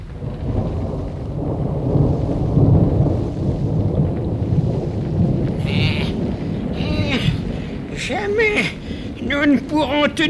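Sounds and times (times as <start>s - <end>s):
deep rolling thunder in a heavy night thunderstorm: 0.0s - 10.2s
animal bleats: 5.6s - 6.2s
speech: 9.4s - 10.2s.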